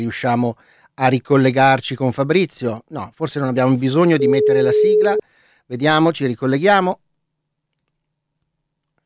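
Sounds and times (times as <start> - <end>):
speech: 0.0 - 7.0
telephone ringing tone of an outgoing call to Cologne: 4.2 - 5.2.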